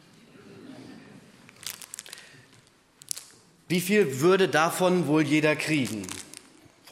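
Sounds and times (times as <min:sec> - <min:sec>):
plastic bag of gummy bears crinkling: 0:01.5 - 0:03.4, 0:05.3 - 0:06.9
speech: 0:03.7 - 0:06.2.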